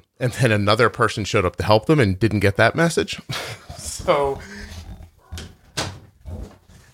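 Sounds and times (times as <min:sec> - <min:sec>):
speech: 0:00.2 - 0:04.7
dog's short breathy huffs or barks: 0:03.6 - 0:06.9
dog giving a high whiny yelp: 0:04.6 - 0:05.7.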